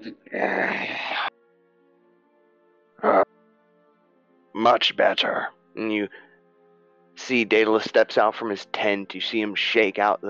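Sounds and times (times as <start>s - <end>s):
speech: 0.0s - 1.1s, 4.6s - 6.3s, 7.2s - 10.2s
man groaning while stretching and yawning in a tent at daybreak: 3.0s - 3.3s.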